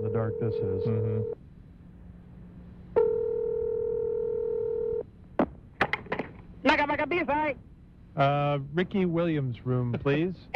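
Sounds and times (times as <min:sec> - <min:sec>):
speech: 0:00.0 - 0:01.5, 0:06.7 - 0:10.5
telephone dial tone: 0:03.0 - 0:05.0.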